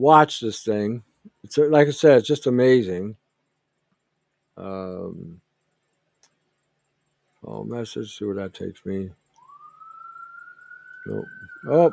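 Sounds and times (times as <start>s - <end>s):
speech: 0.0s - 3.2s, 4.6s - 5.4s, 7.4s - 9.2s, 11.1s - 11.9s
ambulance siren: 9.3s - 11.9s.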